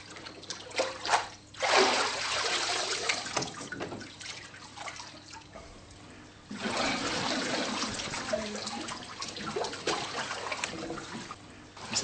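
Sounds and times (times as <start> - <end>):
water splashing as a person is immersed during a baptism on an alpine pasture: 0.0 - 11.4.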